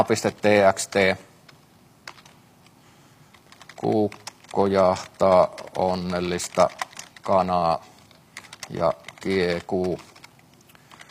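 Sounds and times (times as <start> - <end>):
speech: 0.0 - 1.3, 3.8 - 7.9, 8.7 - 10.1
hiss: 0.0 - 11.1
typing on a computer keyboard: 1.5 - 2.4, 3.3 - 11.1.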